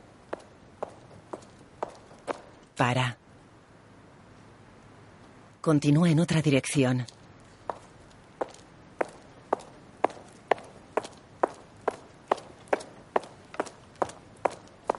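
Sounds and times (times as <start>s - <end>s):
footsteps climbing a steep stone staircase toward a church precinct: 0.3s - 2.6s, 7.7s - 14.9s
speech: 2.8s - 3.2s, 5.6s - 7.2s.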